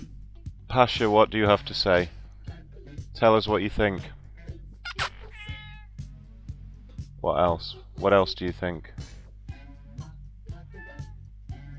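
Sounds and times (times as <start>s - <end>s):
speech: 0.7s - 2.2s, 3.2s - 4.2s, 7.2s - 9.1s
sick cat meowing plaintively: 4.8s - 6.0s, 10.7s - 11.2s.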